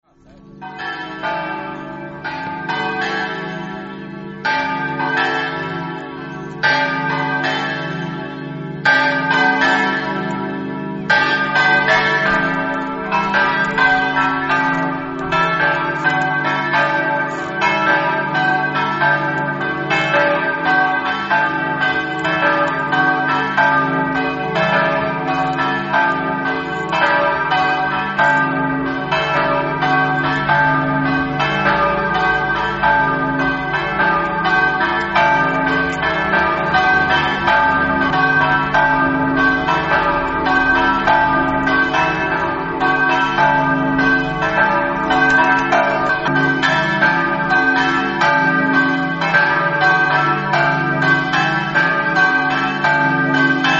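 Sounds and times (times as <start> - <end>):
bells ringing: 0.0 - 53.7.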